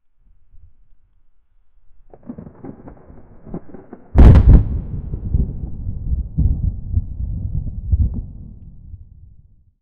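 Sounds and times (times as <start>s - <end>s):
crackling fire: 0.0s - 9.5s
distant thunder: 2.1s - 9.7s.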